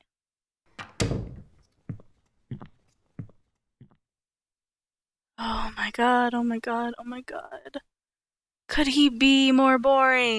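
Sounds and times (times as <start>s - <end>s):
door swinging shut with a heavy thud: 0.8s - 1.7s
speech: 5.4s - 7.9s, 8.7s - 10.3s.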